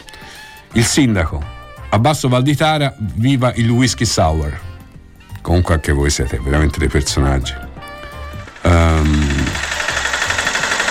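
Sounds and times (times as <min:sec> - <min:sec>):
speech: 0:00.8 - 0:04.7, 0:05.4 - 0:07.6, 0:08.6 - 0:09.3
diesel tractor engine starting and idling: 0:08.0 - 0:10.8.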